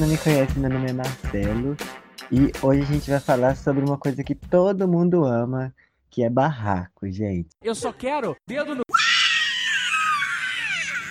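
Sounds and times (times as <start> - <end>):
speech: 0.0 - 8.9
people screaming with shrill overlapping voices: 8.9 - 11.0.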